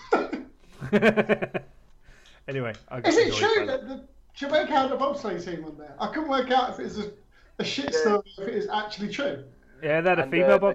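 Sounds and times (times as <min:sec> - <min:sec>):
person coughing: 0:00.0 - 0:00.6
speech: 0:00.9 - 0:01.8, 0:02.5 - 0:10.7.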